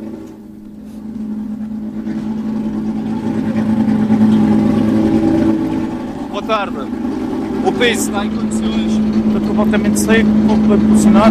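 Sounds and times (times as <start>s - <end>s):
rally car engine droning and revving: 0.0s - 11.2s
speech: 7.6s - 8.9s, 9.5s - 11.2s.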